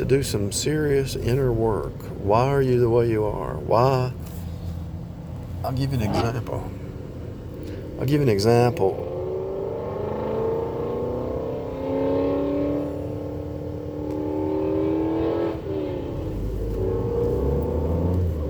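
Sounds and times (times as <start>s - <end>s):
speech: 0.0s - 4.3s, 5.6s - 6.8s, 8.0s - 9.1s
car engine roaring and revving: 5.3s - 18.4s.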